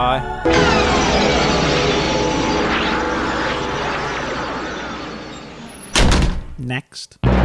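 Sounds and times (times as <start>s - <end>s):
speech: 0.0s - 1.6s, 6.6s - 7.3s
steady loud rushing noise: 0.5s - 6.0s
door closing with a sharp thud: 5.9s - 6.6s.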